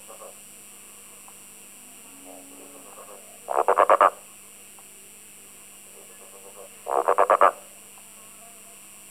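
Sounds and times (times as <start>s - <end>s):
Litoria raniformis calling: 1.2s - 4.4s, 5.9s - 7.8s.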